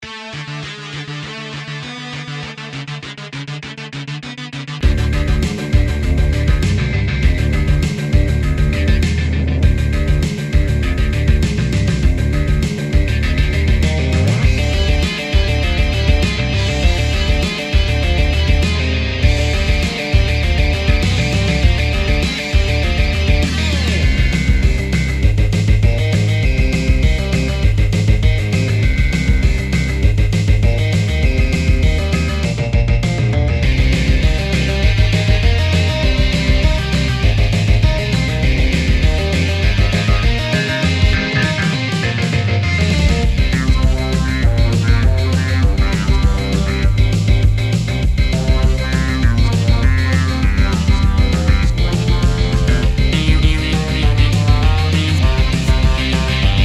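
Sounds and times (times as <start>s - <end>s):
2000s emo rock music: 0.0s - 56.6s.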